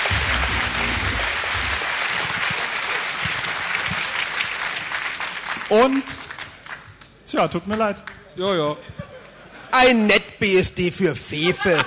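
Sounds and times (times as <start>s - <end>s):
faint low rumble: 0.0s - 2.4s
sizable crowd applauding a quiz contestant: 0.0s - 6.0s
speech: 5.7s - 6.3s, 7.3s - 9.0s, 9.7s - 11.8s.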